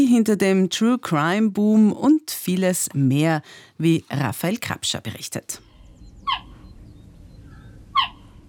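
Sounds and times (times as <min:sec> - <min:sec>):
speech: 0:00.0 - 0:05.7
low rumbling hum: 0:05.6 - 0:08.4
cheetah chirping: 0:05.8 - 0:08.4.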